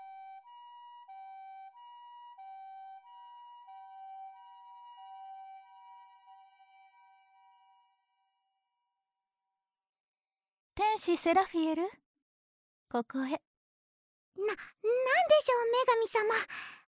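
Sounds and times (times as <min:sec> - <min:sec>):
two-tone siren: 0:00.0 - 0:08.6
speech: 0:11.0 - 0:12.0, 0:12.9 - 0:13.5, 0:14.4 - 0:16.7.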